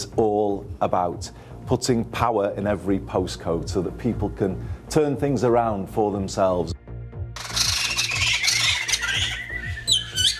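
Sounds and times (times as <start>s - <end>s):
speech: 0.2s - 6.7s
harsh raspy bird squawks: 7.4s - 10.3s.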